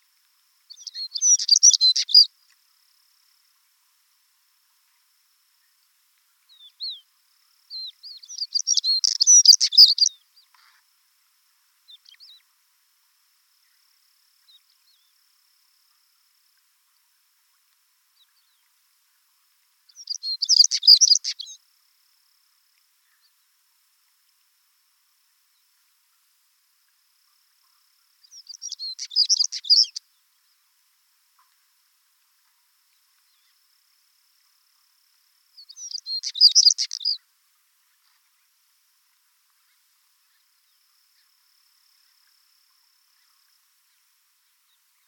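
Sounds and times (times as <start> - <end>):
chernogolovyy chekan stonechat calling: 0.7 - 2.3, 7.7 - 10.2, 19.9 - 21.6, 28.2 - 30.0, 35.6 - 37.2.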